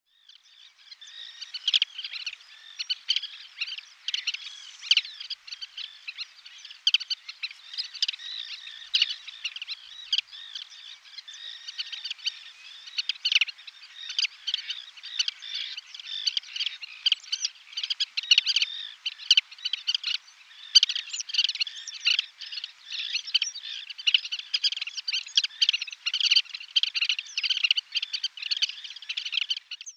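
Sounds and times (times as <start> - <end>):
black-winged pratincole calling: 0.1 - 29.9.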